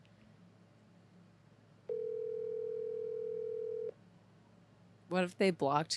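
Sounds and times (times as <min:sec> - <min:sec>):
quiet hum: 0:00.0 - 0:05.9
steady phone ringback tone: 0:01.9 - 0:03.9
speech: 0:05.1 - 0:05.9.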